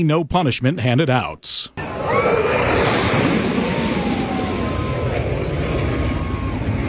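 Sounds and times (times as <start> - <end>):
speech: 0.0 - 3.6
low-flying military jet roaring past over the water in Florida: 1.8 - 6.8.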